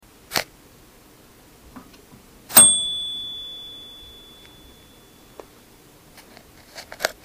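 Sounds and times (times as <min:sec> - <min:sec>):
bell ding: 0:02.6 - 0:05.4.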